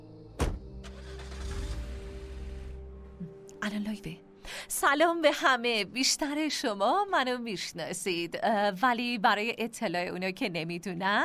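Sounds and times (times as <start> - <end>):
car door shutting: 0.4 - 2.7
speech: 3.7 - 11.2.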